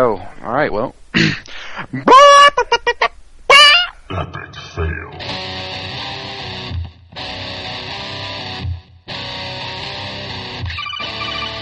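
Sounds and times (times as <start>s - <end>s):
speech: 0.0s - 2.5s
person imitating a chicken squawking and clucking: 1.2s - 5.3s.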